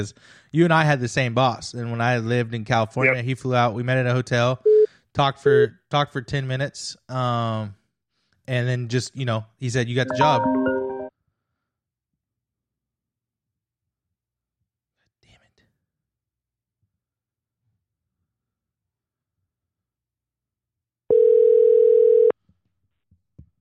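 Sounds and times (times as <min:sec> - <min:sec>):
speech: 0:00.0 - 0:07.8, 0:08.5 - 0:10.6
telephone dial tone after dropped phone call: 0:21.1 - 0:22.3.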